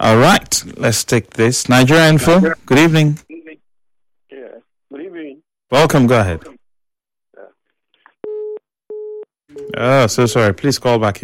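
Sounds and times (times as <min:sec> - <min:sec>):
speech: 0:00.0 - 0:03.3, 0:05.7 - 0:06.5, 0:09.6 - 0:11.2
telephone busy tone on a dropped radio phone-in call: 0:08.2 - 0:09.8.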